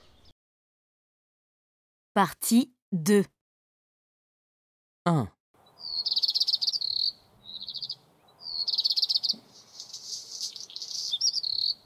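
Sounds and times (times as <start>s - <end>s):
bird chirping in high-pitched trills: 0.0s - 0.3s, 5.6s - 11.8s
speech: 2.2s - 3.4s, 5.0s - 5.4s.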